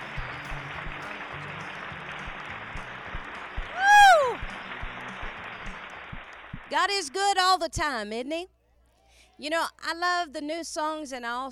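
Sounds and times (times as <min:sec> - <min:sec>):
congregation applauding with hand clapping: 0:00.0 - 0:06.8
low rhythmic thumps: 0:00.0 - 0:06.8
speech: 0:06.8 - 0:08.6, 0:09.4 - 0:11.5.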